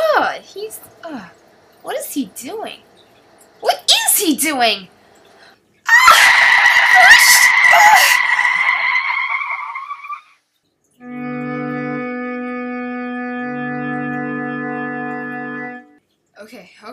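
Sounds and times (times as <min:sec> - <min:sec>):
speech: 0:00.2 - 0:02.9, 0:03.6 - 0:05.0, 0:16.5 - 0:16.9
car tire squeal on Route 89: 0:06.0 - 0:10.3
steady blaring horn-like tone: 0:11.0 - 0:16.0.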